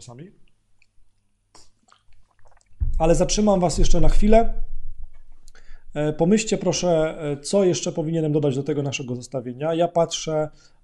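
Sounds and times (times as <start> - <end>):
speech: 0.0 - 0.5, 3.0 - 4.7, 6.0 - 10.8
person sipping water: 1.6 - 2.8
soft wet mouth clicks: 1.6 - 2.8.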